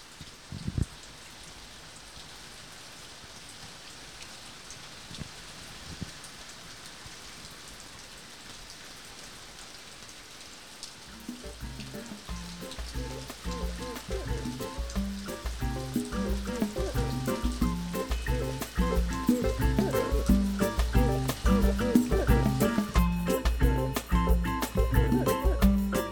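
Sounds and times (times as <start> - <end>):
steady rain falling: 0.0 - 26.1
soft music: 11.2 - 26.1.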